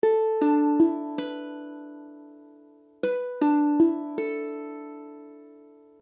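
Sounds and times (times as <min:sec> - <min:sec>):
E7sus4 ukulele chord: 0:00.0 - 0:06.0.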